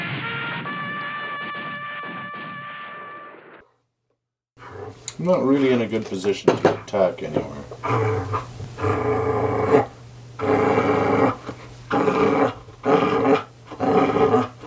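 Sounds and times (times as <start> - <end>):
puppy growling: 4.6 - 5.1, 7.8 - 14.6
speech: 5.2 - 9.2.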